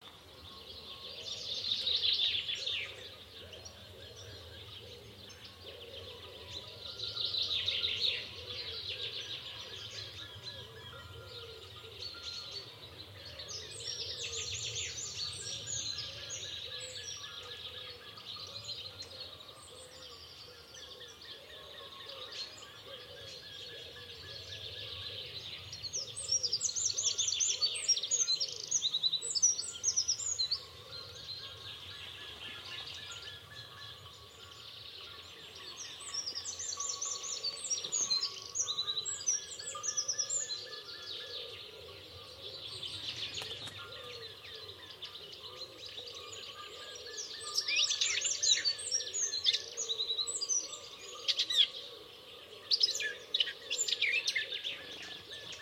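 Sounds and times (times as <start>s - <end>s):
natural animal sounds at daybreak: 0.0s - 55.6s.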